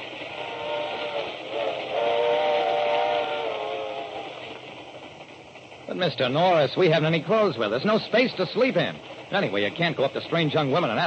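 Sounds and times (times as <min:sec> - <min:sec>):
hissing steam of a departing train: 0:00.0 - 0:11.0
steam train whistle: 0:00.3 - 0:04.4
speech: 0:06.0 - 0:11.0.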